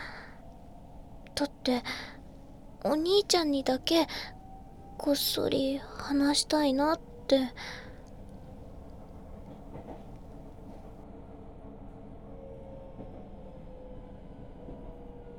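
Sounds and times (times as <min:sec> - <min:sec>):
moving train carriage rumbling with low roar: 0:00.0 - 0:11.0
speech: 0:01.4 - 0:02.1, 0:02.8 - 0:04.4, 0:05.0 - 0:07.8.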